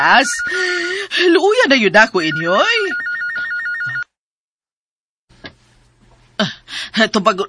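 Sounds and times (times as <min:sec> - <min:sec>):
speech: 0:00.0 - 0:03.0, 0:06.4 - 0:07.4
telephone ringing with electronic trill: 0:00.0 - 0:04.2.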